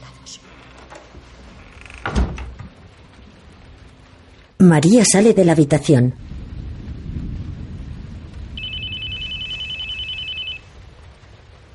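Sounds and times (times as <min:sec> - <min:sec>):
low rumble: 0:00.0 - 0:11.7
speech: 0:04.6 - 0:06.2
telephone ringing with an electronic trill: 0:08.6 - 0:10.7.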